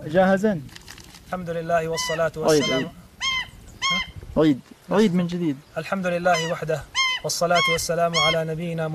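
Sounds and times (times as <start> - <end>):
man kneeling before a camera speaking: 1.3 - 3.0, 3.8 - 8.9
bird chirping: 1.3 - 8.9.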